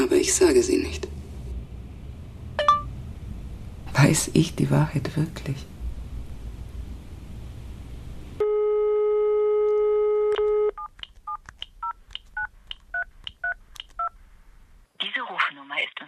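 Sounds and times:
low hiss: 0.0s - 8.4s, 10.9s - 15.0s
speech: 0.2s - 1.1s, 4.0s - 5.7s
steady telephone dial tone: 8.4s - 10.8s.

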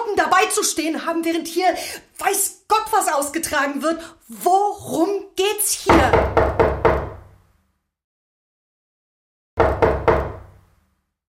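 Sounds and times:
speech: 0.4s - 6.5s
firm knocking on a wooden door: 5.9s - 7.4s, 9.6s - 10.6s.

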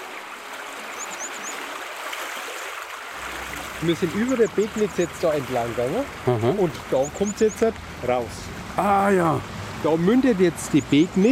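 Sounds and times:
small trickle of water splashing into a stream: 0.0s - 8.1s
speech: 3.8s - 11.2s.

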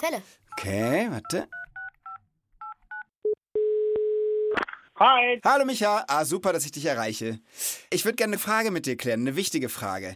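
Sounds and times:
speech: 0.0s - 1.6s, 5.0s - 10.1s
steady phone tone: 1.8s - 4.5s
phone ring tone: 3.6s - 4.5s.

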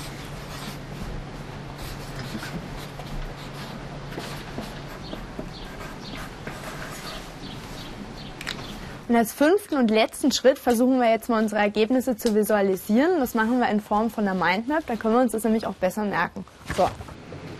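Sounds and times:
low hum: 0.0s - 17.5s
pen writing on a card: 1.8s - 7.2s
speech: 9.1s - 17.1s.

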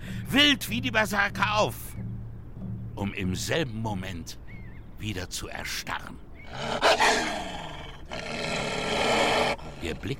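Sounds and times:
speech: 0.3s - 2.1s, 3.0s - 4.4s, 5.0s - 7.5s, 9.8s - 10.1s
pack of wolves growling and snarling: 6.5s - 10.1s.

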